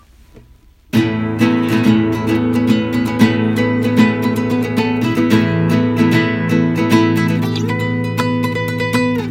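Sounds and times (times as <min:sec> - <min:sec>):
Yamaha CS40 analog synthesizer: 0:00.9 - 0:09.2.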